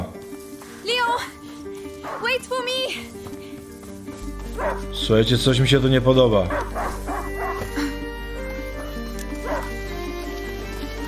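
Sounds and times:
video game sound: 0:00.0 - 0:11.0
speech: 0:01.1 - 0:01.4, 0:02.0 - 0:03.3, 0:04.6 - 0:06.8
hunting dog barking and whining in a video game: 0:04.6 - 0:04.8, 0:06.5 - 0:07.7, 0:09.4 - 0:09.7.

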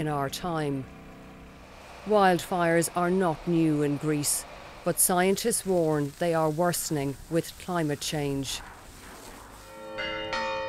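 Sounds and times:
speech: 0:00.0 - 0:01.0, 0:02.0 - 0:08.7
church bells tolling a wildfire warning in Avantas Greece: 0:09.7 - 0:10.6.

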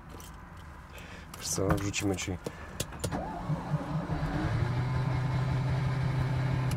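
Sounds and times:
speech: 0:01.5 - 0:02.7
small car engine starting and idling: 0:03.1 - 0:06.7.

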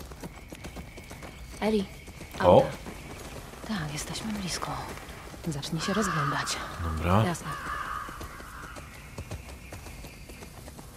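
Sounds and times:
horse hooves clip-clopping in a video game: 0:00.0 - 0:10.9
speech: 0:01.6 - 0:02.8, 0:03.7 - 0:07.7.

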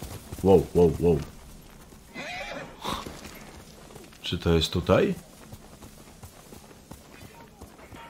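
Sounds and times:
faint clip-clop of hooves: 0:00.0 - 0:08.0
speech: 0:00.4 - 0:01.3, 0:04.3 - 0:05.3
horse whinnying: 0:02.1 - 0:03.2.

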